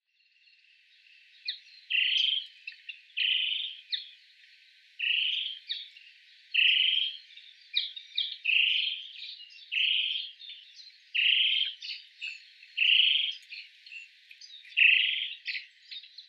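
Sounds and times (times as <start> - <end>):
Akakokko red-headed frog calling: 1.9 - 2.4, 3.2 - 3.8, 5.0 - 5.8, 6.6 - 7.2, 9.7 - 10.4, 11.2 - 13.4, 14.8 - 15.4.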